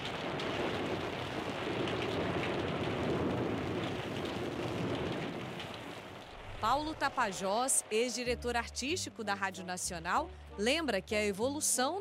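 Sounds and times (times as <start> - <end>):
low rumble of thunder rolling: 0.0 - 7.4
steady dense rainfall pouring down: 0.0 - 8.2
speech: 6.6 - 11.9.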